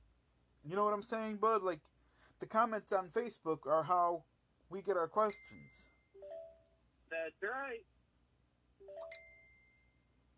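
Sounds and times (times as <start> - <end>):
speech: 0.6 - 5.9, 7.1 - 7.9
phone notification ding: 6.2 - 6.7, 8.8 - 9.8.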